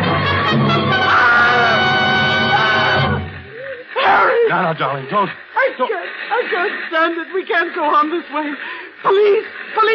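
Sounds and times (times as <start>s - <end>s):
woman shrieking: 1.0s - 3.1s, 3.9s - 4.5s
speech: 4.7s - 9.9s.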